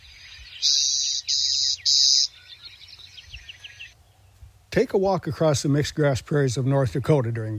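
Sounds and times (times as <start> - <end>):
clay-colored sparrow buzzing on mixed-grass prairie of North Dakota: 0.0 - 4.5
birds chirping: 0.0 - 7.5
speech: 4.8 - 7.5.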